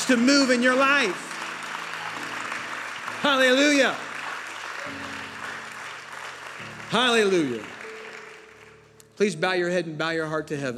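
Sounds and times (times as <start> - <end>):
church congregation clapping in praise during a service: 0.0 - 9.4
speech: 0.1 - 1.3, 3.2 - 4.1, 6.9 - 7.8, 9.2 - 10.7.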